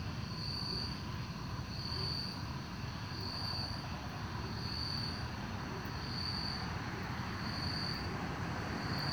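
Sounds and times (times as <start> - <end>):
chorus of crickets chirping at night in a park: 0.2 - 9.1
continuous low traffic rumble: 6.4 - 9.1
cars passing: 6.7 - 9.1.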